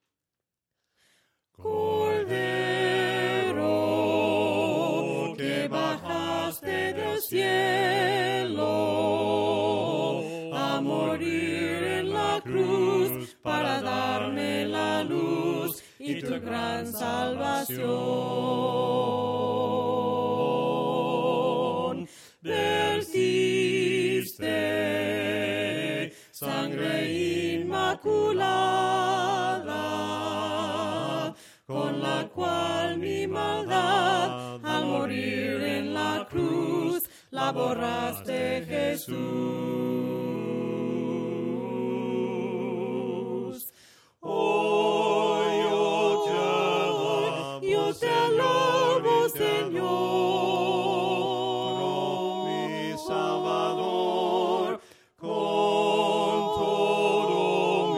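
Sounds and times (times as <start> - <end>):
voices singing hymns a cappella: 1.5 - 57.9.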